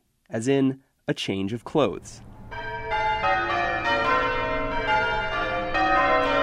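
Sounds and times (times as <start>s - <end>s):
speech: 0.3s - 2.3s
church bells pealing in change ringing: 2.2s - 6.4s.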